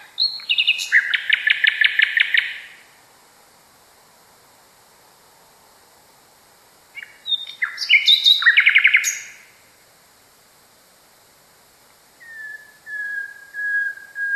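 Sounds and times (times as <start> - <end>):
common nightingale song: 0.0 - 3.1, 6.2 - 10.3, 11.6 - 14.3.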